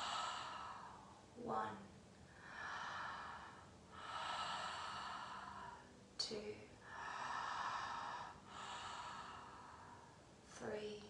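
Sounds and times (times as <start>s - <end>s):
deep connected breathing: 0.0s - 1.3s, 2.3s - 6.0s, 6.7s - 10.4s
speech: 1.5s - 1.9s, 6.3s - 6.7s, 10.6s - 11.0s.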